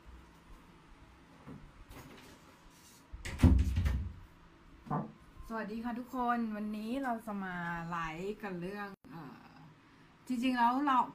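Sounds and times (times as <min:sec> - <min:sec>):
door swinging shut with heavy rattling thud: 0:03.2 - 0:04.2
speech: 0:05.5 - 0:09.0, 0:10.3 - 0:11.1.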